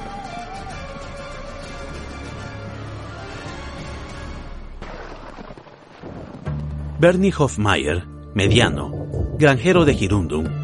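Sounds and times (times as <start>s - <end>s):
speech: 7.0s - 10.6s
distant rolling thunder: 8.5s - 10.0s.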